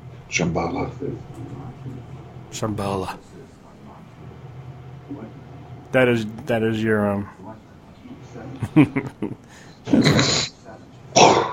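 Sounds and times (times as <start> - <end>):
speech: 0.3 - 3.3, 5.1 - 7.5, 8.4 - 10.5
laughter: 8.5 - 10.0
person clearing throat: 9.9 - 11.5
person coughing up phlegm: 9.9 - 11.5.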